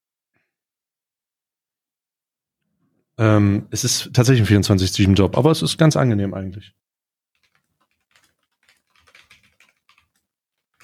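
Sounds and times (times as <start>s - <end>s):
speech: 3.2s - 6.8s
rapid typing on a computer keyboard: 7.4s - 10.8s.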